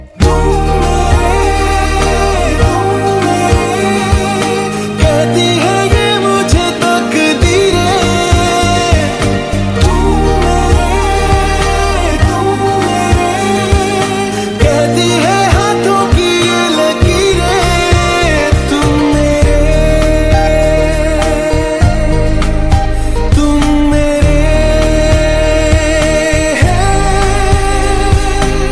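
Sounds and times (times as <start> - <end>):
romantic Hindi ringtone music: 0.0 - 28.6.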